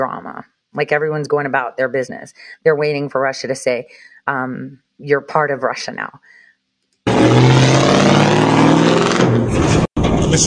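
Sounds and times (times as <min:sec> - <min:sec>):
speech: 0:00.0 - 0:06.4, 0:09.3 - 0:10.4
prisoner truck engine revving while backing out of a courthouse yard: 0:07.1 - 0:10.4.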